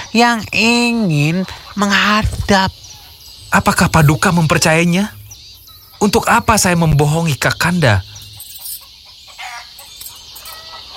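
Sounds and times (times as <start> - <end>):
speech: 0.2 - 2.8, 3.5 - 5.2, 6.0 - 8.1
fighting rooster crowing and clucking: 8.4 - 10.9.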